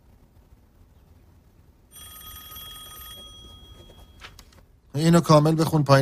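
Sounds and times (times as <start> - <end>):
telephone bell ringing: 1.9 - 4.5
speech: 5.0 - 6.0.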